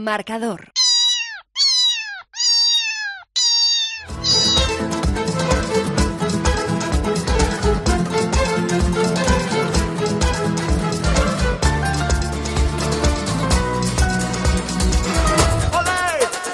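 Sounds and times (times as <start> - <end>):
speech: 0.0 - 0.8
cat meowing: 0.7 - 4.9
busy rhythmic music: 4.1 - 16.5.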